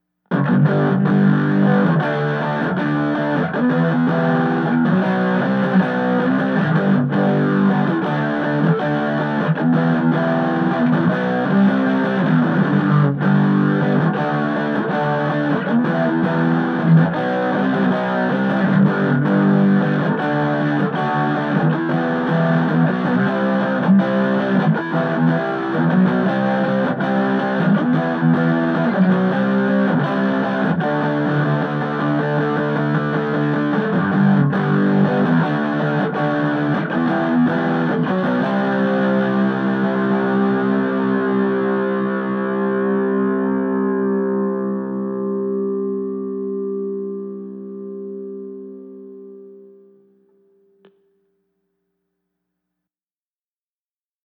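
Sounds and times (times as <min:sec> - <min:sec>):
main rhythm guitar through amp sim: 0:00.3 - 0:49.3.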